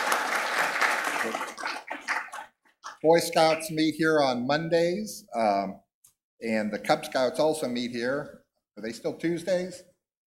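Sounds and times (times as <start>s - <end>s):
crowd applauding in a church: 0.0s - 3.7s
speech: 1.2s - 1.4s, 3.0s - 5.8s, 6.4s - 9.9s.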